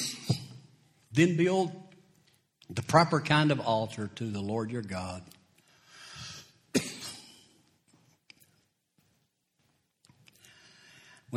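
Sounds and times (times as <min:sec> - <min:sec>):
man coughing into the microphone: 0:00.0 - 0:00.7, 0:06.7 - 0:07.6
speech: 0:01.2 - 0:01.8, 0:02.7 - 0:05.4
faint breaths: 0:05.6 - 0:06.6, 0:10.3 - 0:11.3.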